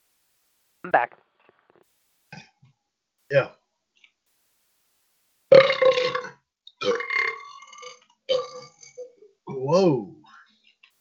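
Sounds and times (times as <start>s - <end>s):
speech: 0.8s - 1.2s, 3.3s - 3.6s, 9.6s - 10.2s
long loud croaking belch: 5.5s - 10.1s.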